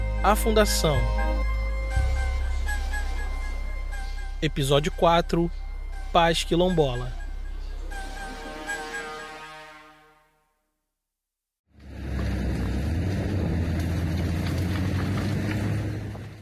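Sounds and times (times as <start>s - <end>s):
small tractor engine droning: 0.0s - 8.4s, 11.8s - 16.4s
speech: 0.2s - 1.5s, 4.4s - 7.2s.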